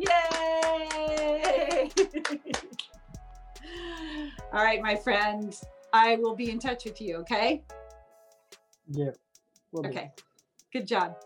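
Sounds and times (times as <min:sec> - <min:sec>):
two people clapping hands: 0:00.0 - 0:03.0
speech: 0:04.5 - 0:07.8, 0:08.9 - 0:11.2.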